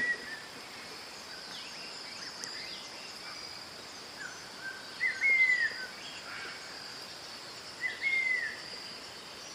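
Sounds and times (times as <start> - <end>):
faint background hiss: 0.0 - 9.5
steady high insect drone: 0.0 - 9.5
Cinnamon Attila whistled calls rising then slurring downward: 4.2 - 5.9, 7.8 - 8.6.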